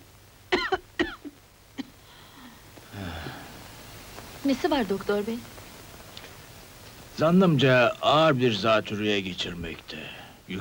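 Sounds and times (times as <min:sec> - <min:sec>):
patient coughing hard during a medical exam: 0:00.6 - 0:01.3
speech: 0:04.4 - 0:05.6, 0:07.2 - 0:10.5.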